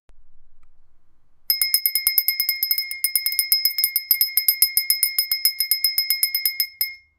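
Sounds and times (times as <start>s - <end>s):
musical singing glass: 1.5s - 7.1s.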